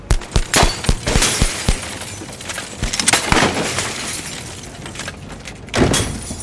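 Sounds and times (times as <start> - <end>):
gunshots exchanged with police: 0.0 - 2.1, 2.8 - 3.7
glass of a high-rise building shattering from bullets in downtown Los Angeles: 0.1 - 5.2.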